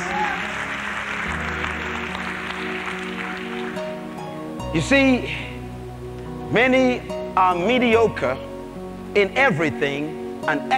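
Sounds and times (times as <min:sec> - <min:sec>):
audience clapping hands: 0:00.0 - 0:04.4
speech: 0:04.7 - 0:05.5, 0:06.5 - 0:08.5, 0:09.2 - 0:10.7.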